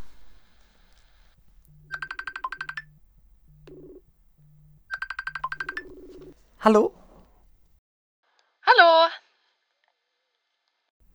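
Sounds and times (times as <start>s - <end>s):
bright warbling melodic phone ringtone on call-back over poor wifi: 0.0s - 7.2s
speech: 6.6s - 7.0s.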